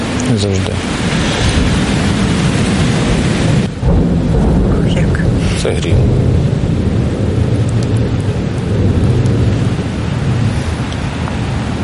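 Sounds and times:
deep rumble of thunder: 0.0s - 11.8s
heavy rain pouring: 0.0s - 11.8s
speech: 0.3s - 1.5s, 5.6s - 6.6s.

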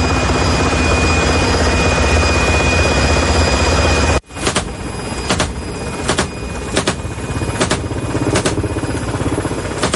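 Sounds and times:
helicopter roar in Ukraine from a drone-hunting unit: 0.0s - 9.9s
throbbing helicopter engine drone: 0.0s - 9.9s
pulsing whumps of helicopter rotor blades: 4.4s - 8.9s.

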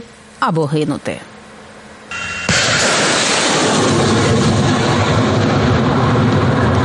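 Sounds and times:
speech: 0.4s - 1.3s
rocket launch blast from a multiple rocket launcher: 2.1s - 6.8s.

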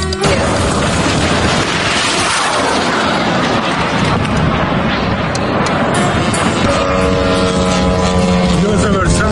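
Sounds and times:
booms amid air defense fire: 0.2s - 9.3s
dense bursts of air defense fire: 0.2s - 9.3s
drone engine roaring past over Moscow: 1.0s - 9.3s
voices: 6.6s - 9.3s.

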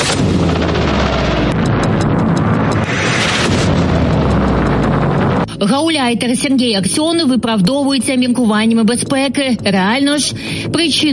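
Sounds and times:
barrage of explosions with deep booms and crackling blasts: 0.0s - 5.6s
speech: 5.7s - 11.1s.

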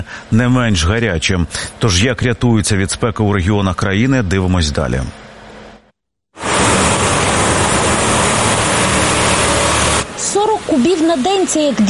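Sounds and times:
speech: 0.0s - 5.2s, 11.1s - 11.8s
water truck spraying water on street: 6.4s - 11.8s.

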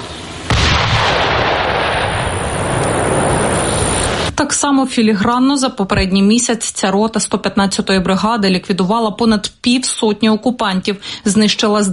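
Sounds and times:
constant noise: 0.0s - 11.9s
large bomb dropped on an enemy shelter exploding: 0.4s - 4.4s
speech: 4.5s - 11.9s.

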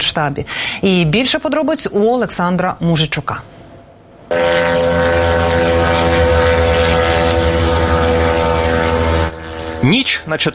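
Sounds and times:
speech: 0.0s - 3.6s, 4.3s - 5.2s, 9.8s - 10.5s
Ukrainian attack drone propeller engine over St Petersburg at night: 4.2s - 10.5s.

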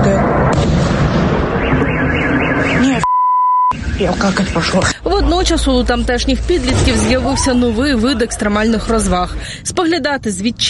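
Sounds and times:
loud continuous rumbling blasts from drone explosions at night: 0.0s - 2.4s, 5.2s - 9.4s
car alarm wailing: 1.5s - 4.7s
steady high-pitched beep tone: 1.7s - 3.8s
speech: 4.0s - 10.6s.

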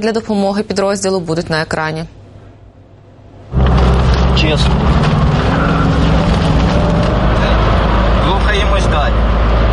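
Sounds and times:
speech: 0.0s - 2.2s, 4.4s - 5.1s
broadband road and wind noise: 3.4s - 9.7s
car driving fast on road: 3.5s - 9.7s.

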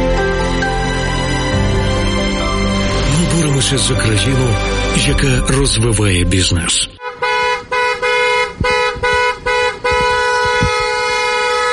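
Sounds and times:
low traffic rumble: 0.0s - 11.7s
speech: 3.6s - 7.0s
bus horns honking from arriving buses: 6.7s - 11.7s.

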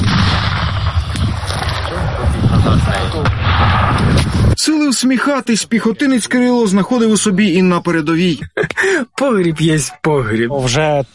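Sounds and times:
gunshot: 0.0s - 2.2s, 2.8s - 4.6s
speech: 4.8s - 11.1s.

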